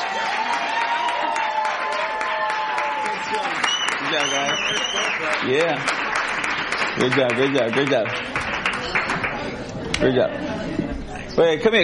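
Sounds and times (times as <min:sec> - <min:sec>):
people cheering and whooping: 0:00.0 - 0:05.4
audience applauding: 0:00.0 - 0:09.7
speech: 0:04.1 - 0:08.4, 0:10.0 - 0:10.7, 0:11.4 - 0:11.8.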